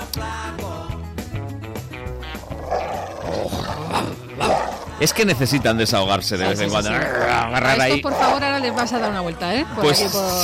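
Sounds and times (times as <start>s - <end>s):
dog growling with harsh snarls: 2.4s - 5.8s, 6.4s - 9.4s
speech: 5.0s - 10.4s
dog barking loudly: 8.0s - 9.2s.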